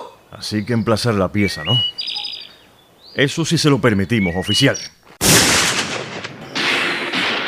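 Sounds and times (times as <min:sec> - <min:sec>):
speech: 0:00.4 - 0:02.1, 0:03.2 - 0:05.0
rifle fire during a skirmish: 0:05.2 - 0:07.4
volley of gunshots from positions on both sides of a road: 0:05.2 - 0:07.4.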